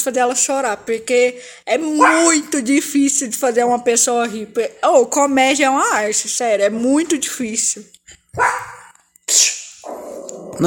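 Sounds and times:
speech: 0.0s - 8.7s, 9.3s - 10.6s
female dog barking: 2.0s - 2.4s, 8.4s - 8.9s.

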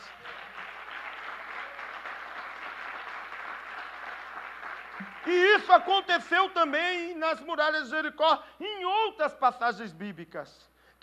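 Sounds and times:
audience applauding: 0.0s - 5.8s
speech: 5.0s - 11.0s.

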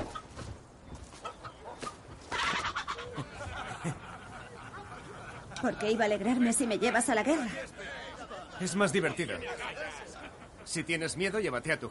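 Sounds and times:
rooster clucking: 1.2s - 5.6s
laughter: 2.7s - 11.2s
speech: 5.6s - 7.8s, 8.6s - 10.1s, 10.7s - 11.8s.

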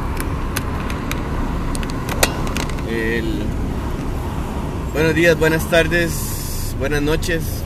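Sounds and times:
car driven along a highway, heard from inside: 0.0s - 7.6s
speech: 2.9s - 3.6s, 5.0s - 7.6s.

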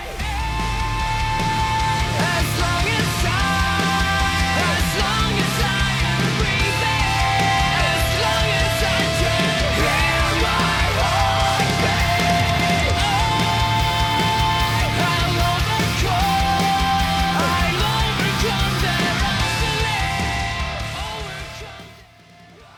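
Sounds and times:
emo rock song with sung lead vocal, guitars and drums: 0.0s - 22.7s.

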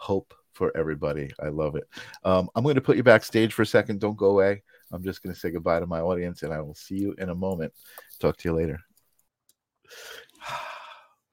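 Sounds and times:
speech: 0.0s - 8.9s, 9.9s - 10.7s
deep breath drawn in through the nose: 9.9s - 11.3s.

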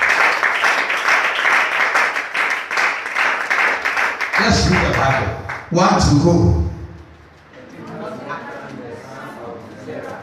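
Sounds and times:
many hands clapping during Christian worship: 0.0s - 5.7s
speech: 4.4s - 6.6s.

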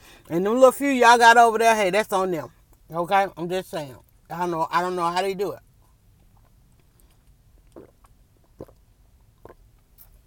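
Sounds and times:
speech: 0.3s - 5.7s
person sipping a drink: 6.3s - 10.2s.

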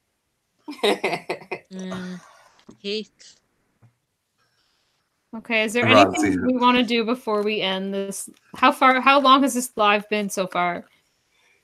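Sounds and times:
laughter: 0.7s - 2.2s, 5.8s - 6.9s
speech: 0.8s - 3.4s, 5.3s - 10.9s
heavy coughing: 5.8s - 6.4s
voiced groan: 5.8s - 6.8s.

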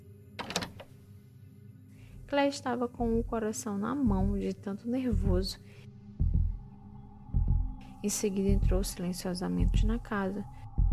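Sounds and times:
house back door latch clicking and rattling as it opens: 0.4s - 0.9s
speech: 2.3s - 5.8s, 8.0s - 10.6s.

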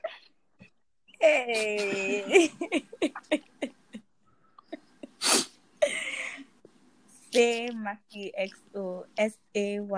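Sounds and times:
speech: 1.2s - 3.1s, 7.4s - 9.9s
laughter: 1.5s - 4.0s
sneeze: 5.2s - 5.5s.

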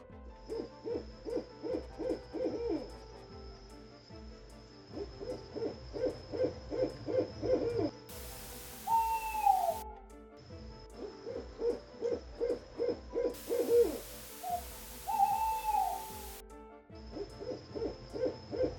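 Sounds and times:
owl hooting in quick rhythmic runs: 0.5s - 3.0s, 5.0s - 10.0s, 11.0s - 16.4s, 17.1s - 18.7s
faint steady high-pitched tone: 8.1s - 9.8s, 13.4s - 16.4s.

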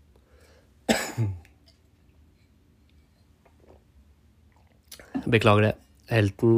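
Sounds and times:
person clearing throat: 0.9s - 1.6s
speech: 1.2s - 1.4s, 5.3s - 6.5s.

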